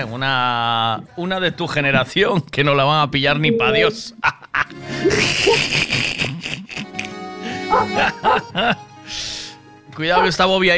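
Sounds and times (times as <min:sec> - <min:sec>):
speech: 0:00.0 - 0:06.2, 0:07.7 - 0:09.3, 0:10.0 - 0:10.7
laughter: 0:03.8 - 0:08.8
dog barking: 0:07.7 - 0:08.5, 0:10.2 - 0:10.4.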